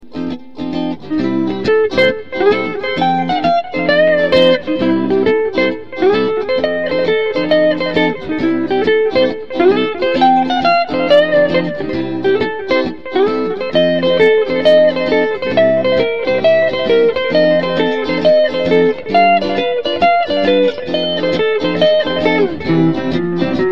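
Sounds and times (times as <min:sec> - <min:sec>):
guitar playing bebop in C: 0:00.0 - 0:23.7.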